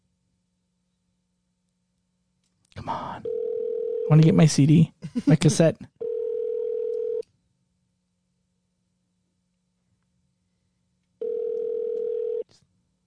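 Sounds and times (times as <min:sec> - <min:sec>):
telephone ringback tone: 0:03.2 - 0:04.1, 0:06.0 - 0:07.2, 0:11.2 - 0:12.4
speech: 0:04.1 - 0:05.9.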